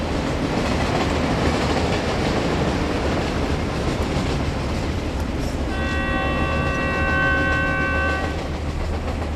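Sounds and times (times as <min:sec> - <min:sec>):
train bound for Wuhan rumbling along the rails: 0:00.0 - 0:09.3
long train horn blast: 0:05.6 - 0:08.5.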